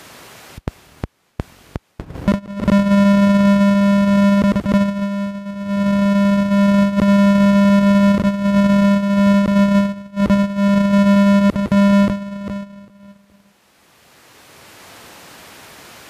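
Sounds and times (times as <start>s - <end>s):
CDMA1x call signal: 2.3s - 13.6s.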